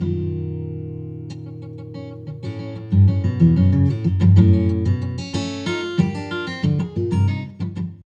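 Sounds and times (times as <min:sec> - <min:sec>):
guitar sample: 0:00.0 - 0:08.0.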